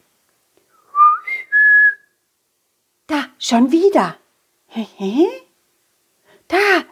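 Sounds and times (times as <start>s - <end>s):
whistle: 0.8s - 2.2s
speech: 3.4s - 5.4s, 6.5s - 6.9s.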